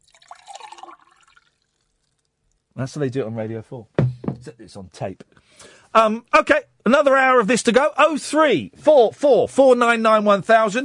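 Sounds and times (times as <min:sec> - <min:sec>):
drink pouring into a glass: 0:00.0 - 0:02.6
speech: 0:02.8 - 0:10.8.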